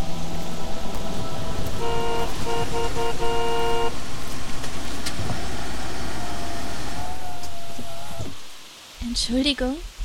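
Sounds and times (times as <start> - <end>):
road and engine noise: 0.0 - 10.0
car horn honking: 1.8 - 4.0
speech: 2.6 - 4.0, 9.2 - 9.9.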